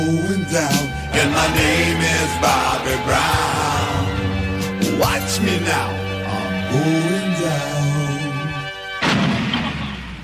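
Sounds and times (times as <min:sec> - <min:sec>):
speech: 0:00.0 - 0:04.1, 0:05.0 - 0:06.0, 0:06.7 - 0:07.9
rock song: 0:00.0 - 0:10.2
explosion sound effect: 0:09.0 - 0:10.2.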